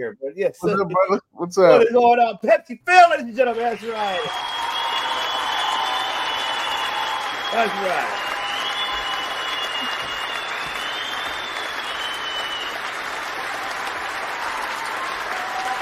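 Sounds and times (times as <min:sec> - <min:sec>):
speech: 0:00.0 - 0:04.6, 0:07.5 - 0:08.2
crowd applauding: 0:03.4 - 0:15.8.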